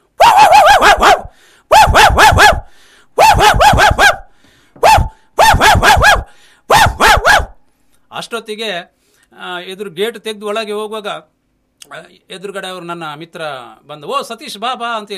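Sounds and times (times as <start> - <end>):
dog barking at people arriving at a house gate: 0.2 - 7.6
speech: 8.4 - 15.1.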